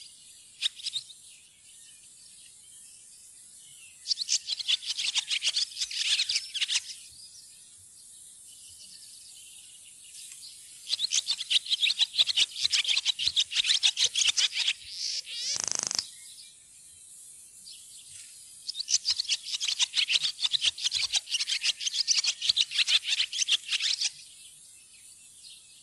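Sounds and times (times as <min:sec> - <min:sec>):
barn swallow twittering: 0:04.1 - 0:07.0, 0:10.9 - 0:16.3, 0:18.7 - 0:24.3.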